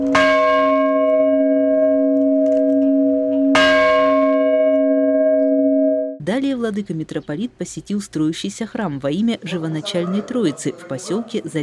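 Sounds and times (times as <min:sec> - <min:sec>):
antique ship-style bell struck at a chapel: 0:00.0 - 0:06.2
speech: 0:06.3 - 0:11.6.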